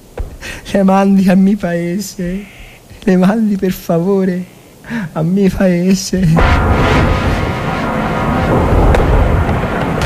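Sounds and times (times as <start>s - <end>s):
speech: 0.7s - 7.1s
artillery fire in wartime rumbling: 6.4s - 10.0s.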